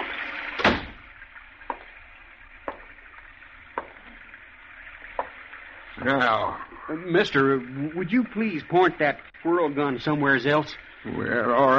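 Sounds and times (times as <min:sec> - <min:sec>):
steady rain hissing outside an open doorway: 0:00.0 - 0:11.7
sharp taps: 0:01.6 - 0:02.0, 0:02.6 - 0:03.1, 0:03.7 - 0:04.2, 0:05.1 - 0:05.4
speech: 0:06.0 - 0:11.7.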